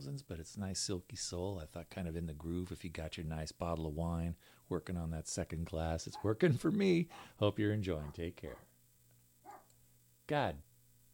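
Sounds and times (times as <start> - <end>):
speech: 0.0 - 8.7, 10.3 - 10.7
low hum: 0.0 - 11.1
dog barking: 6.1 - 6.4, 8.0 - 8.7, 9.4 - 9.7.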